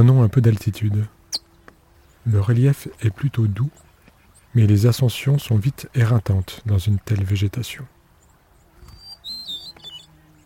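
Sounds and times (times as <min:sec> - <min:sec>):
speech: 0:00.0 - 0:01.2, 0:02.2 - 0:03.8, 0:04.5 - 0:08.0
bird calling from dense brush with thin high squeaky notes: 0:01.2 - 0:02.2, 0:08.3 - 0:10.4.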